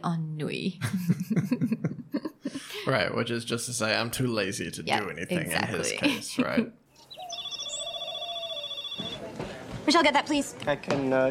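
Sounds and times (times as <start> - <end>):
speech: 0.0 - 1.9, 2.8 - 6.8, 9.9 - 11.2
laughter: 0.8 - 2.9, 5.7 - 6.8
telephone ring with a rapid trilling bell tone: 7.2 - 9.2.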